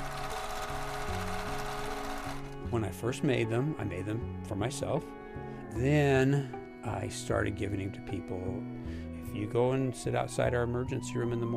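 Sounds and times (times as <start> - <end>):
sewing machine stitching fabric bags: 0.0 - 2.6
speech: 2.7 - 11.5.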